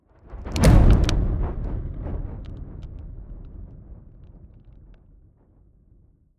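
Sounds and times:
fire whoosh with long decay: 0:00.3 - 0:05.2.

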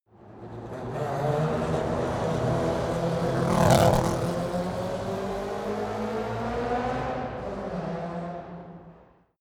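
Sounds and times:
Formula 1 racing car driving by: 0:00.1 - 0:09.2.

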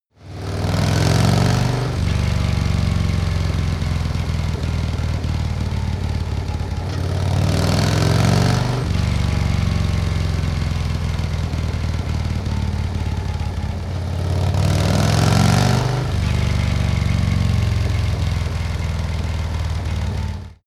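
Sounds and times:
Harley motorcycle accelerating hard: 0:00.2 - 0:20.6.

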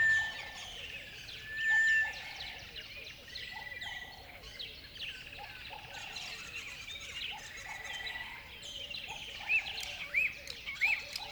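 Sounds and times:
lower looping bird calls: 0:00.0 - 0:02.6
dawn chorus of birds singing in a river bed: 0:00.0 - 0:11.3.

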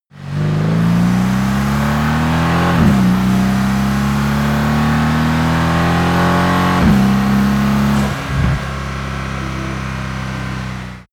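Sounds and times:
Mercedes AMG C63 S car accelerating fast: 0:00.1 - 0:11.1.

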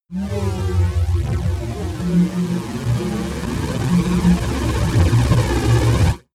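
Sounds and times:
phasing wobble riser: 0:00.1 - 0:06.2.

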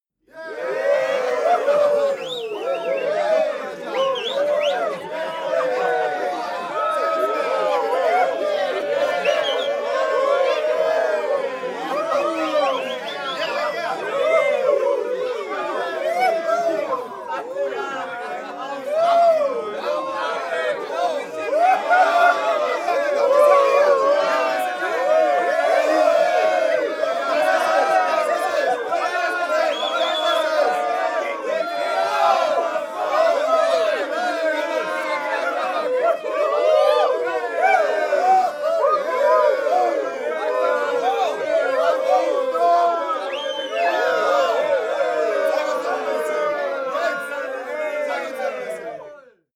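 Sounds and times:
people cheering happily: 0:00.4 - 0:49.2.

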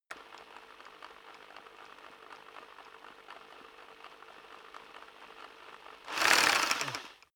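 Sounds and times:
rock drill hammer idling and revving: 0:05.4 - 0:07.3.

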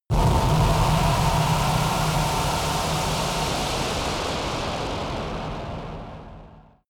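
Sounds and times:
massive screaming strike impact: 0:00.1 - 0:06.8.

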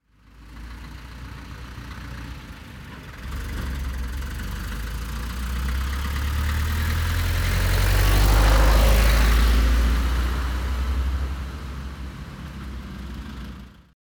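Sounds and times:
tractor driving: 0:00.2 - 0:13.9.

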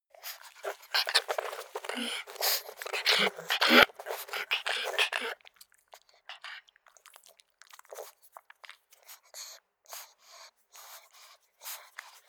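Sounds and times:
pug panting: 0:00.2 - 0:07.2, 0:09.0 - 0:12.2
pug smacking: 0:00.2 - 0:09.6.

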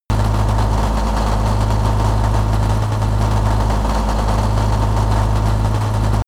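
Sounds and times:
damaged truck running unsteadily: 0:00.1 - 0:06.2.

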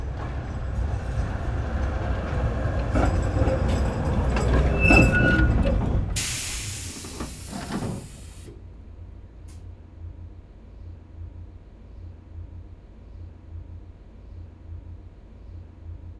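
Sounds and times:
tram arriving: 0:00.1 - 0:08.5.

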